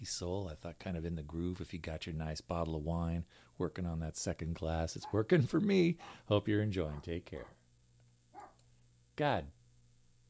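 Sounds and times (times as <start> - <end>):
speech: 0.0 - 7.6, 9.2 - 9.6
quiet hum: 0.0 - 10.2
dog barking: 5.0 - 5.3, 6.8 - 7.6, 8.3 - 8.6.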